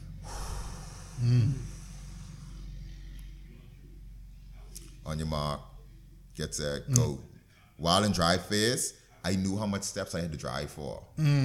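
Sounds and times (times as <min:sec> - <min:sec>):
sprinter's sharp deep breath in the starting blocks: 0:00.0 - 0:02.7
low steady rumble: 0:00.0 - 0:06.8
speech: 0:01.2 - 0:01.6, 0:05.1 - 0:05.7, 0:06.4 - 0:11.4.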